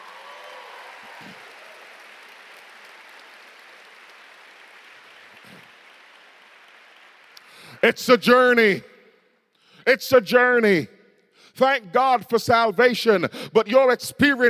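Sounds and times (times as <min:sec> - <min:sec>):
crowd of hundreds applauding: 0:00.0 - 0:08.5
speech: 0:07.8 - 0:08.9, 0:09.8 - 0:10.9, 0:11.6 - 0:14.4.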